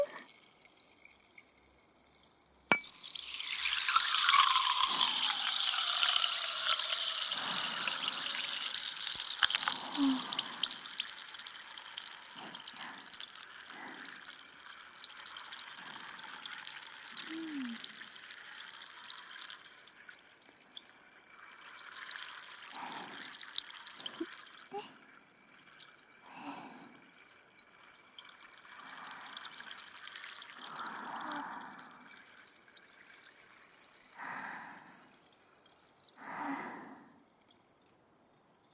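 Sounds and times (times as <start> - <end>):
carbonated water fizzing with fine bubbles: 0.0 - 38.7
soft liquid plips: 0.0 - 38.7.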